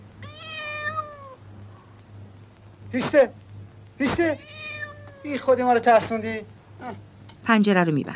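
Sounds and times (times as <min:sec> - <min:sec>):
steady low hum: 0:00.0 - 0:08.1
cat meowing on a railing outside a window: 0:00.2 - 0:01.4, 0:04.1 - 0:05.7
speech: 0:02.9 - 0:03.4, 0:04.0 - 0:04.6, 0:05.2 - 0:08.1.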